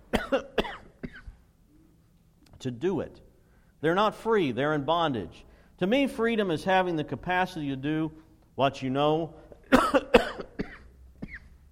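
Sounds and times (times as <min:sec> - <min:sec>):
short throaty coughs: 0:00.1 - 0:01.4, 0:09.5 - 0:11.6
speech: 0:00.3 - 0:00.6, 0:02.6 - 0:03.2, 0:03.8 - 0:10.3.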